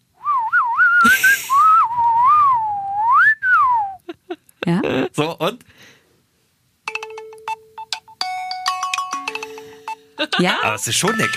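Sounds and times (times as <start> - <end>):
person whistling a bright wandering melody: 0.2 - 4.0
speech: 4.7 - 5.7, 10.4 - 11.3.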